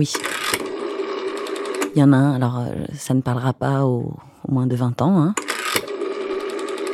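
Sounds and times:
speech: 0:00.0 - 0:00.6, 0:02.0 - 0:05.5
rotary telephone dial whirring and clicking as it turns: 0:00.0 - 0:02.1, 0:05.4 - 0:06.9.

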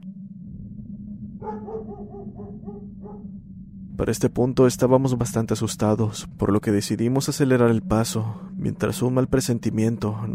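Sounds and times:
constant low rumble of noise: 0:00.0 - 0:10.3
dog barking while running away: 0:01.4 - 0:03.3
speech: 0:01.4 - 0:10.3.

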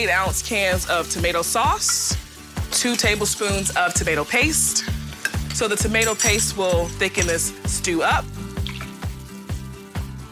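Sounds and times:
speech: 0:00.0 - 0:05.0, 0:05.6 - 0:08.4
faint sizzling: 0:00.0 - 0:10.3
beef stock glugging into a stew pot: 0:08.6 - 0:09.1.

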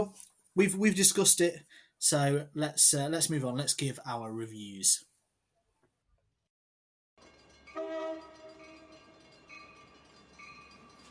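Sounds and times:
speech: 0:00.0 - 0:05.1
train rumbling on rails: 0:07.2 - 0:11.1
train horn blasting: 0:07.7 - 0:09.2.

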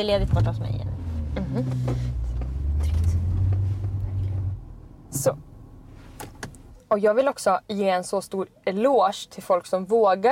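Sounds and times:
speech: 0:00.0 - 0:02.4, 0:05.1 - 0:05.5, 0:06.9 - 0:10.2
car engine humming driving past in a parking area: 0:00.0 - 0:07.4.

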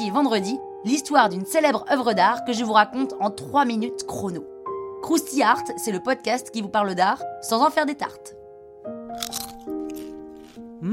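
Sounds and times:
speech: 0:00.0 - 0:08.4
crunchy food being bitten: 0:09.1 - 0:10.7.

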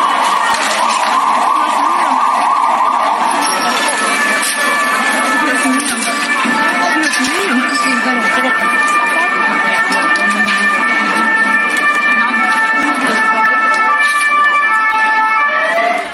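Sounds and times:
crowd noise: 0:00.0 - 0:16.1
emergency vehicle sirens responding to a gas explosion in Madrid Spain: 0:00.0 - 0:16.1
indistinct voices: 0:00.0 - 0:16.1.

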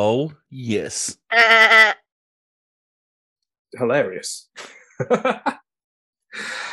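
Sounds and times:
speech: 0:00.0 - 0:02.0, 0:03.7 - 0:05.6
person imitating a goat bleating: 0:01.3 - 0:02.0
laughter: 0:04.6 - 0:05.6.

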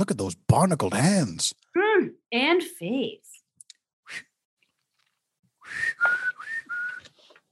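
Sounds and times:
speech: 0:00.0 - 0:03.3
person whistling on a boat deck on the open sea: 0:04.1 - 0:04.4, 0:05.6 - 0:07.2.

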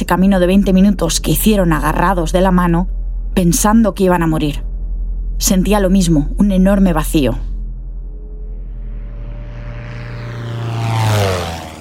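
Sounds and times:
propeller airplane droning overhead: 0:00.0 - 0:11.8
speech: 0:00.1 - 0:04.7, 0:05.4 - 0:07.5.

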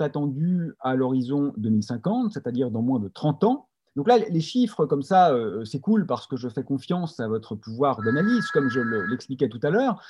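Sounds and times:
speech: 0:00.0 - 0:10.0
landline telephone ringing with a thin sustained electronic tone: 0:08.0 - 0:09.2.

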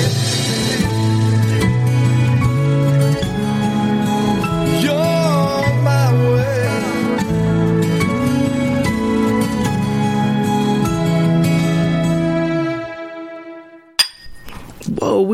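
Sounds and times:
song music: 0:00.0 - 0:14.2
shot glasses clinking: 0:14.0 - 0:14.9
glass handling noises: 0:14.0 - 0:15.0.

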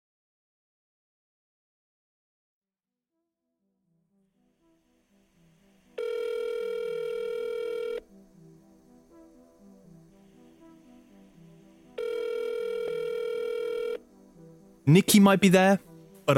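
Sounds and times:
quiet patterned sound: 0:03.7 - 0:16.3
telephone ringing unanswered with long electronic ring tones: 0:06.0 - 0:08.0, 0:12.0 - 0:14.0
speech: 0:14.9 - 0:16.3.

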